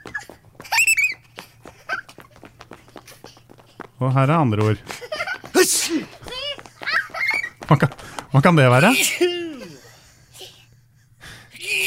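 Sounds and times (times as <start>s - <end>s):
speech: 4.0s - 5.0s, 5.6s - 6.3s, 7.7s - 9.4s
laughter: 4.6s - 10.0s
sneeze with breathy inhaling gasps: 8.9s - 10.5s.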